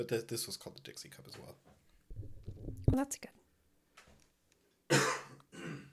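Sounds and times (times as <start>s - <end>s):
speech: 0.0s - 3.4s
person coughing harshly: 4.9s - 5.9s.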